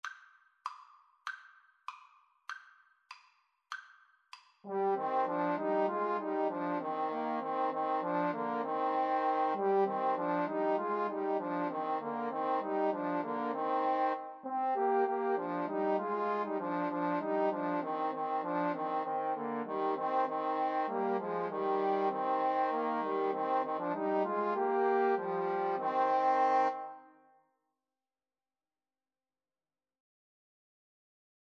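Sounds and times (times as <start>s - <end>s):
trombone trio playing a carol: 4.7s - 26.8s.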